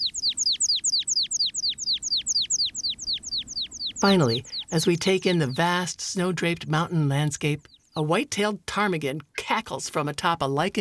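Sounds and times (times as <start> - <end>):
American pipit trilling while hovering in the open rocky alpine zone: 0.0 - 5.9
speech: 4.0 - 10.7.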